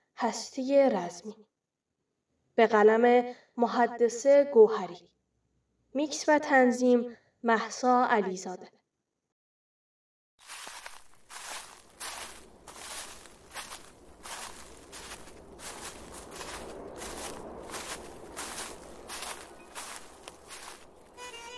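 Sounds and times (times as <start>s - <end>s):
speech: 0.2s - 1.5s, 2.6s - 5.1s, 5.9s - 8.8s
footsteps crunching on gritty ground: 10.4s - 21.5s.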